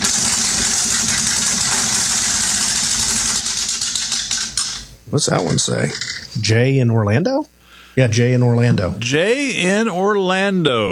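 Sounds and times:
prize wheel being spun: 0.0s - 4.8s
speech: 5.1s - 10.9s.

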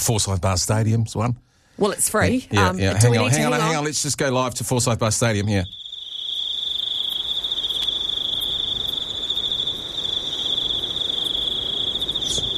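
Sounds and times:
speech: 0.0s - 5.8s
crickets chirping at a stadium: 2.6s - 12.5s.

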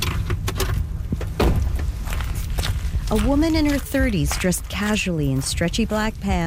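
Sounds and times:
front door of a house opening: 0.0s - 2.3s
speech: 3.1s - 6.4s.

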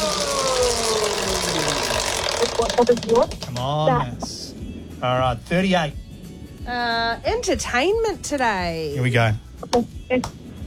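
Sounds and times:
prize wheel spinning in a quiz game: 0.0s - 4.1s
speech: 2.6s - 4.4s, 5.0s - 6.0s, 6.6s - 10.4s.

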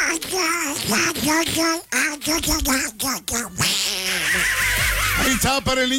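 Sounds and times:
human imitation of a raspy nasal cartoon duck voice quacking and babbling: 0.0s - 5.5s
speech: 0.2s - 5.9s
laughter: 4.1s - 5.7s.

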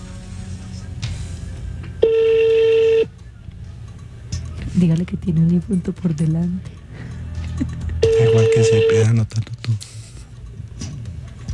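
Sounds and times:
steady telephone tone during call transfer: 2.0s - 3.1s, 8.0s - 9.1s
speech: 4.8s - 6.8s, 7.6s - 7.8s, 8.6s - 9.9s.

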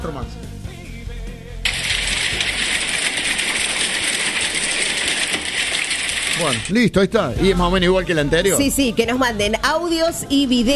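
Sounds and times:
hail clattering: 1.7s - 6.8s
speech: 6.4s - 10.7s.

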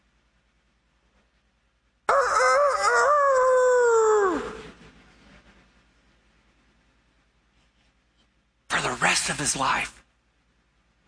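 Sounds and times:
rooster crowing: 2.1s - 4.8s
speech: 9.4s - 10.0s.

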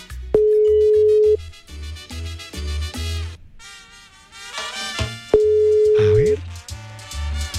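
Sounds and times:
upbeat music with a thumping bass: 0.0s - 3.4s, 4.6s - 7.5s
telephone ringing on the line during a radio call-in contest: 0.4s - 1.4s, 5.4s - 6.4s.

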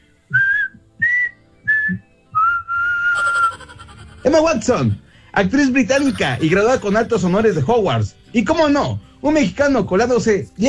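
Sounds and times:
person whistling a short clear phrase: 0.3s - 3.5s
laughter: 3.2s - 8.5s
speech: 4.2s - 10.6s.

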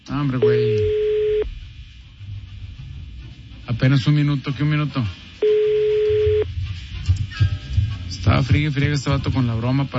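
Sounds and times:
faint low hum: 0.0s - 9.9s
speech: 0.1s - 1.0s, 3.8s - 5.2s, 8.2s - 9.9s
telephone tone on an unanswered call: 0.4s - 1.5s, 5.4s - 6.5s.

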